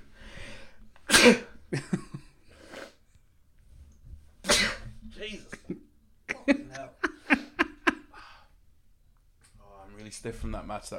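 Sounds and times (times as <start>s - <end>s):
breathy exhalations: 0.0s - 1.6s, 8.1s - 8.7s
person sneezing: 1.1s - 1.6s, 4.4s - 5.0s
speech: 1.2s - 2.0s, 10.2s - 10.9s
laughter: 5.2s - 8.4s.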